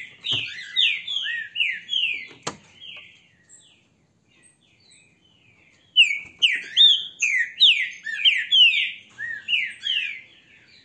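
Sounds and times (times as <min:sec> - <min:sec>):
green-winged saltator song of rapid falling whistled slurs: 0:00.1 - 0:03.0, 0:06.0 - 0:10.2.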